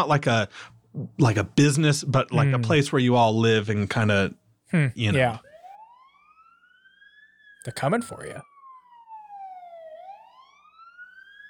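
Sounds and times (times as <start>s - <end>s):
speech: 0.0s - 5.5s, 7.6s - 8.5s
emergency vehicle siren wailing outside: 5.0s - 11.4s.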